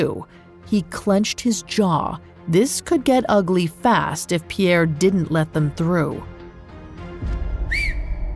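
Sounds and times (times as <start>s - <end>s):
speech: 0.0s - 6.3s
single short whistle rising then falling: 7.7s - 8.3s.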